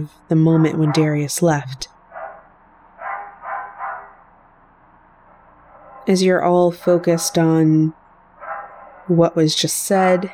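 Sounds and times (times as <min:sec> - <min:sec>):
speech: 0:00.0 - 0:01.9, 0:06.1 - 0:08.0, 0:09.1 - 0:10.3
dog barking in the background: 0:00.6 - 0:01.2, 0:02.1 - 0:04.2, 0:08.4 - 0:09.1.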